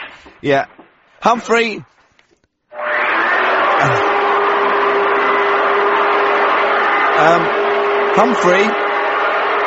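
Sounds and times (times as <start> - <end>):
speech: 0.2 - 2.0, 7.2 - 7.6, 8.1 - 8.8
vacuum cleaner running with a steady whir: 3.7 - 9.6.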